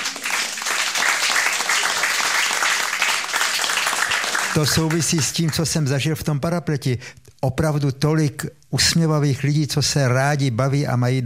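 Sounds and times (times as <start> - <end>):
audience applauding: 0.0 - 5.6
speech: 4.6 - 11.2.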